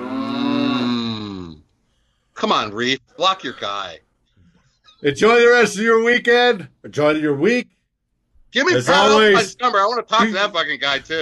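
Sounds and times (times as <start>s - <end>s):
cow mooing: 0.0s - 1.2s
speech: 2.4s - 4.0s, 5.0s - 7.8s, 8.5s - 11.2s.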